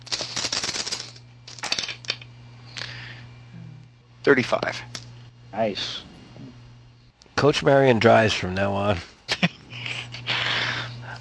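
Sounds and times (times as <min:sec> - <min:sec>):
handful of dice rattling across a hard surface: 0:00.0 - 0:02.2
speech: 0:04.2 - 0:05.0, 0:05.6 - 0:06.1, 0:07.4 - 0:09.1.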